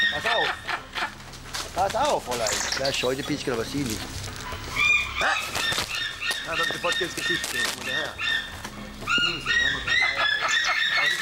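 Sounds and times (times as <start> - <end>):
white-tailed eagle calling in Germany: 0.0 - 1.2, 4.4 - 11.1
speech: 0.2 - 0.7, 1.8 - 4.3, 5.2 - 5.5, 6.5 - 8.4, 9.2 - 10.0.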